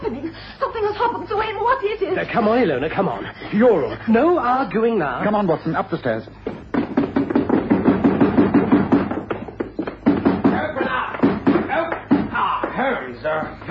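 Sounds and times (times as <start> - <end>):
speech: 1.0 - 6.4, 13.3 - 13.6
heavy rapid pounding on a locked door: 6.4 - 12.8
voice sounding over the banging: 10.6 - 12.8.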